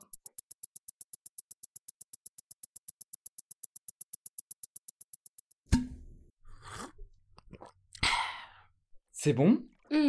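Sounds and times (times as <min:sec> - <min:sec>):
water bottle cap clicks: 0:05.7 - 0:06.2
sipping and swallowing water from a water bottle: 0:06.6 - 0:08.1
speech: 0:09.2 - 0:10.0.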